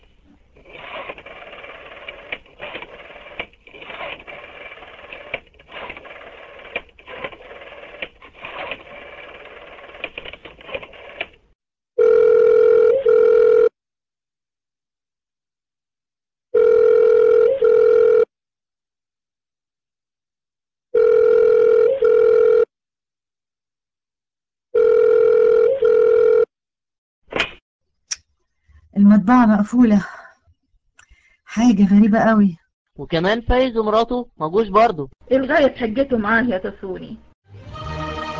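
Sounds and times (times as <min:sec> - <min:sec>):
telephone ringback tone purring: 0:12.0 - 0:13.7, 0:16.6 - 0:18.3, 0:21.0 - 0:22.7, 0:24.8 - 0:26.5
speech: 0:29.6 - 0:30.2, 0:31.7 - 0:37.3.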